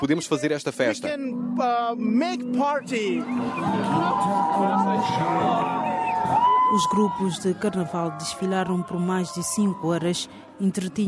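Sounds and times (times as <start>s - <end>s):
speech: 0.0s - 11.0s
carnival crowd shouting and cheering: 2.8s - 11.0s.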